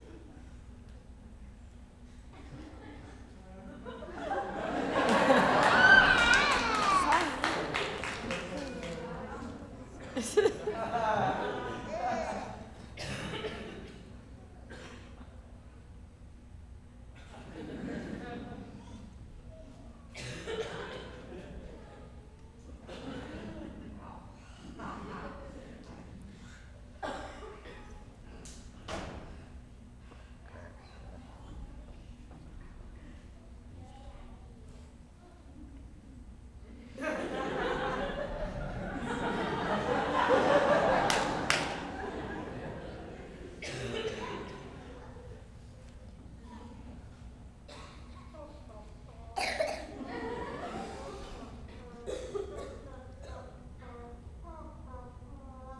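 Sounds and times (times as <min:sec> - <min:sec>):
audience laughing softly at a mime performance: 0:02.3 - 0:15.6, 0:17.2 - 0:29.1, 0:36.6 - 0:53.6
person coughing in a crowd: 0:11.9 - 0:13.7, 0:43.6 - 0:44.3, 0:49.4 - 0:50.0, 0:52.1 - 0:53.4.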